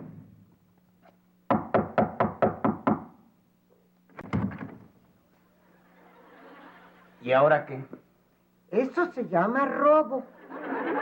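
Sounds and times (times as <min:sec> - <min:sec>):
loud knocking on a door: 0:01.5 - 0:03.2
laughter: 0:05.4 - 0:07.2, 0:10.3 - 0:11.0
speech: 0:07.3 - 0:08.0, 0:08.7 - 0:10.5.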